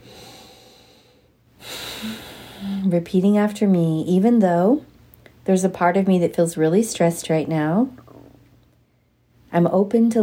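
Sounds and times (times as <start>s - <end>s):
deep breath through the nose: 0.0s - 2.9s
speech: 2.8s - 4.9s, 5.5s - 8.0s, 9.5s - 10.2s.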